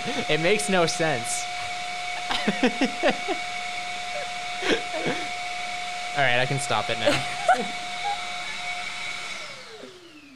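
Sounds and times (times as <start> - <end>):
laughter: 0.0 - 0.4, 2.2 - 3.5, 4.2 - 5.3, 6.9 - 8.6
speech: 0.0 - 1.5, 2.4 - 3.5, 6.2 - 7.8
vacuum cleaner running and winding down: 0.0 - 10.3.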